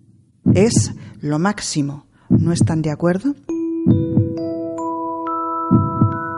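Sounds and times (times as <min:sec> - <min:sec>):
deep human heartbeats: 0:00.4 - 0:01.2, 0:02.3 - 0:02.8, 0:03.9 - 0:04.5, 0:05.7 - 0:06.2
speech: 0:00.6 - 0:04.1.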